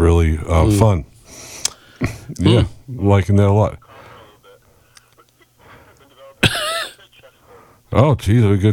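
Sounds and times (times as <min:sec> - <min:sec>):
speech: 0:00.0 - 0:01.1, 0:02.0 - 0:03.8, 0:07.9 - 0:08.7
person coughing over a band-limited phone line: 0:06.2 - 0:07.4.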